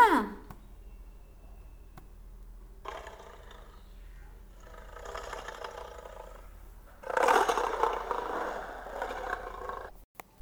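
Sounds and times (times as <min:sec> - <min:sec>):
lion roaring: 0:02.8 - 0:09.9.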